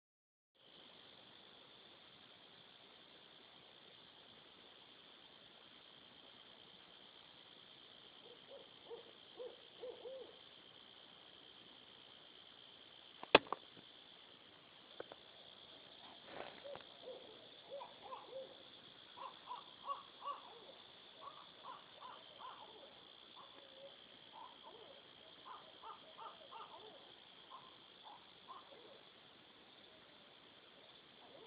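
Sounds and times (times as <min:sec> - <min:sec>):
coyote: 0:00.7 - 0:31.4.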